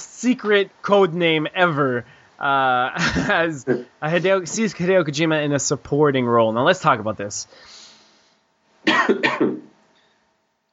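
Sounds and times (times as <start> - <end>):
speech: 0.2 - 7.8, 9.0 - 9.7
quick harsh coughs with raspy tail: 3.0 - 3.9, 8.9 - 9.7.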